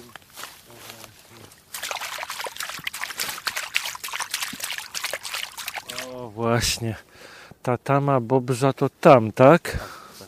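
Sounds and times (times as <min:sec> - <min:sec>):
squelching footsteps on soft waterlogged forest ground beside a beaver dam: 0:00.0 - 0:06.3
speech: 0:06.4 - 0:10.0.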